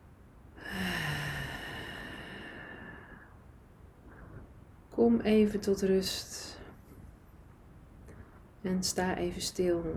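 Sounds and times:
deep breath drawn in during a guided relaxation exercise: 0.6 - 3.4
speech: 5.0 - 6.6, 8.6 - 9.9.

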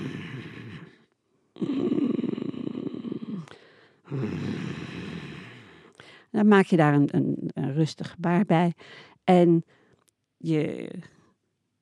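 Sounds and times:
person making forceful growling tiger sound exhales in a breathing exercise: 0.0 - 1.0, 1.6 - 5.8
speech: 6.3 - 9.8, 10.4 - 11.2.

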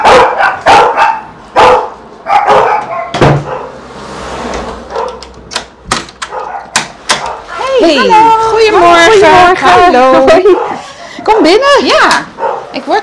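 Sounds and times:
dogs barking behind a closed door: 0.0 - 3.9, 4.8 - 5.3, 6.2 - 13.0
speech: 7.9 - 10.7, 11.3 - 13.0
laughter: 9.3 - 11.8.

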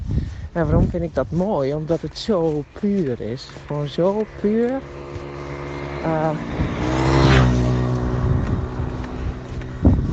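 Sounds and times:
speech: 0.6 - 5.1, 6.0 - 7.0
loud moped engine passing by: 3.4 - 10.1.

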